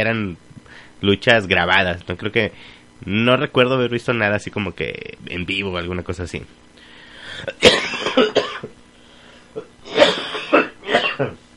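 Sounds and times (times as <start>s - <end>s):
speech: 0.0s - 6.7s, 11.2s - 11.4s
harsh raspy coughing: 7.3s - 8.8s, 9.6s - 11.4s.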